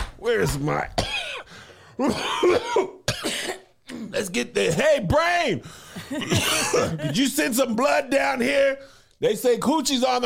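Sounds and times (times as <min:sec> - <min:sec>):
speech: 0:00.3 - 0:01.0, 0:02.0 - 0:03.0, 0:04.1 - 0:10.2
person letting out exaggerated put-on coughs: 0:01.0 - 0:04.2, 0:06.0 - 0:07.2.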